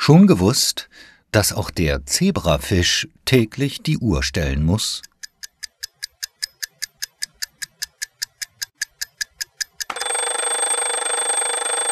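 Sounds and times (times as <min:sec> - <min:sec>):
speech: 0:00.0 - 0:05.1
alarm clock ticking: 0:05.0 - 0:11.9
alarm clock loud continuous metallic ringing: 0:09.9 - 0:11.9.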